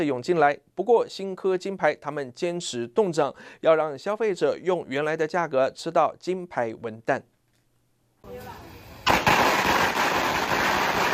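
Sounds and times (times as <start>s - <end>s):
speech: 0.0s - 7.3s
string of firecrackers crackling: 8.3s - 11.1s.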